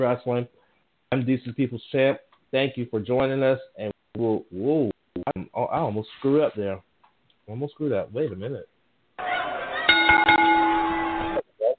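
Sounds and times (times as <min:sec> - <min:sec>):
speech: 0:00.0 - 0:06.9, 0:07.5 - 0:08.7
bell struck and ringing: 0:09.8 - 0:11.4.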